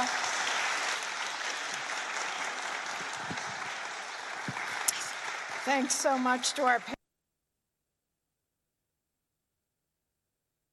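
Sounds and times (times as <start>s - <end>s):
audience applause: 0.0s - 7.0s
speech: 5.7s - 7.0s.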